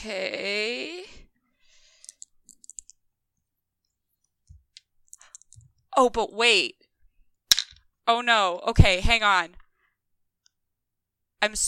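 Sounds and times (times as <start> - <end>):
speech: 0.0 - 1.1, 6.0 - 6.8, 8.1 - 9.6, 11.4 - 11.6
handful of dice rattling and clicking together: 2.0 - 3.0, 4.8 - 5.7, 7.5 - 7.8.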